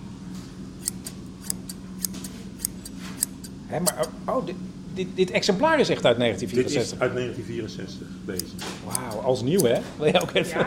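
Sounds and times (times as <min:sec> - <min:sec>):
low hum: 0:00.0 - 0:10.6
vintage scissors made in 1964 snipping: 0:00.8 - 0:04.1, 0:08.3 - 0:10.4
speech: 0:03.7 - 0:10.6
laughter: 0:09.8 - 0:10.6.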